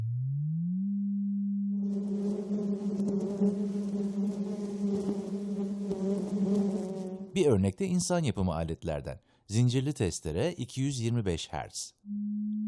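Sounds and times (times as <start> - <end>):
smooth low tone: 0.0 - 3.0, 12.0 - 12.6
bees buzzing: 1.8 - 7.4
speech: 7.4 - 12.3.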